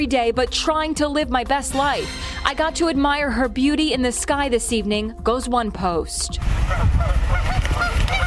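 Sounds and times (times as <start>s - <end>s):
speech: 0.0s - 7.5s
flock of geese honking: 6.6s - 8.2s.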